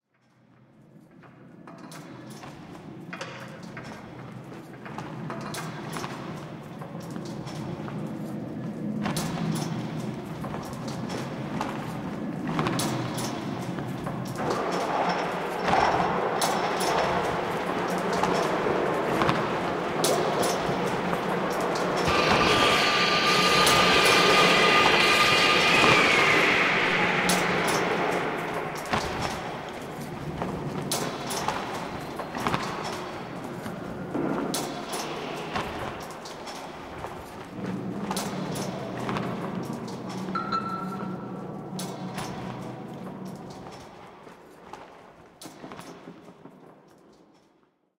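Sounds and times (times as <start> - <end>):
construction ambience: 0.1 - 47.6.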